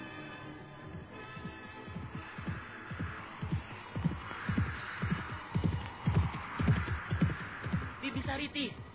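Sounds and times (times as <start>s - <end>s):
horse hooves galloping toward the Sunda royal palace: 0.9s - 8.9s.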